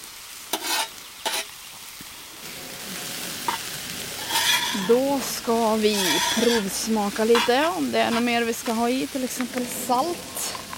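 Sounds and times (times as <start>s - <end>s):
vegetables with spices, onion and garlic sizzling in a pan: 0.0s - 10.7s
scraping stirs in a pan: 3.5s - 5.0s, 5.8s - 8.3s
speech: 4.8s - 10.6s.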